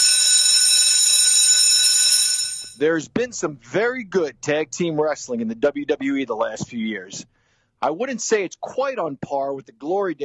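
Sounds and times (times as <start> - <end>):
wrestling ring bell ringing: 0.0 - 2.8
speech: 2.8 - 10.2.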